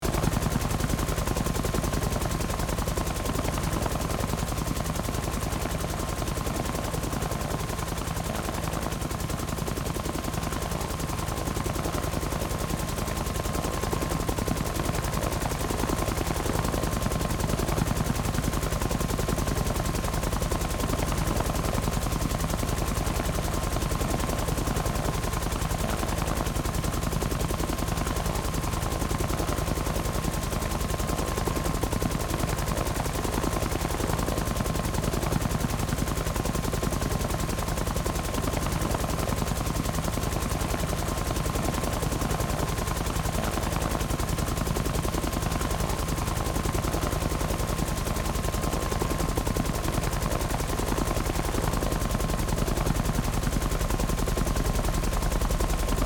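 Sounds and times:
helicopter engine in forward flight: 0:00.0 - 0:56.0.

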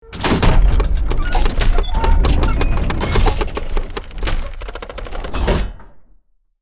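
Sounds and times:
big cinematic gears moving: 0:00.0 - 0:05.9.

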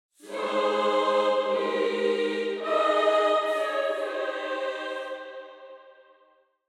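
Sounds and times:
angelic choir: 0:00.2 - 0:06.3.

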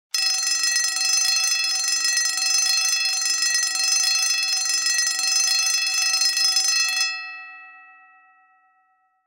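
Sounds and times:
emergency fire alarm bell ringing steadily: 0:00.1 - 0:09.2.

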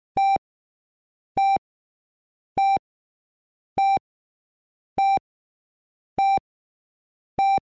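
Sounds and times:
emergency medical kit heart monitor beeps: 0:00.2 - 0:00.4, 0:01.4 - 0:01.6, 0:02.6 - 0:02.8, 0:03.8 - 0:04.0, 0:05.0 - 0:05.2, 0:06.2 - 0:06.4, 0:07.4 - 0:07.6.

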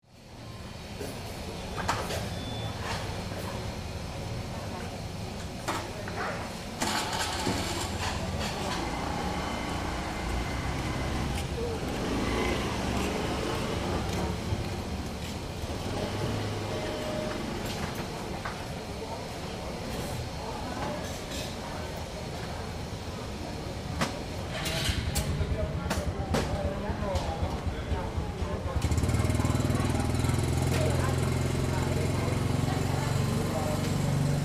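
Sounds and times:
small crowd at a street market: 0:00.0 - 0:34.4.

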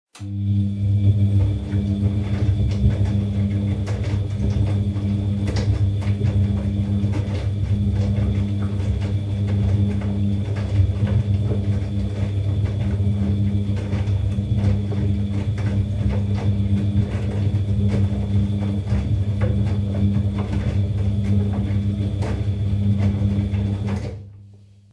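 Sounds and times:
dishwasher running: 0:00.1 - 0:24.6.

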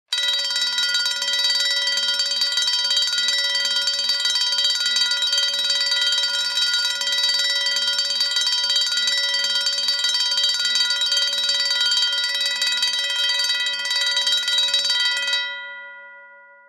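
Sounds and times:
service elevator alarm bell: 0:00.1 - 0:16.6.

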